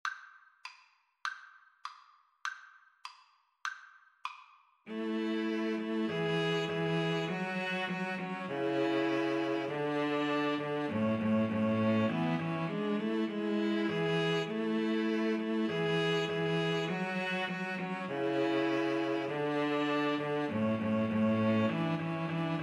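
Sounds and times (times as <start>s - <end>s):
string trio playing: 4.9s - 22.6s.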